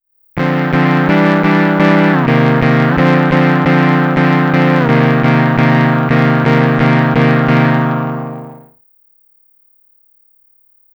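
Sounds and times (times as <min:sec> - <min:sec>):
Volca Bass synth poly pitch bend: 0:00.4 - 0:08.7.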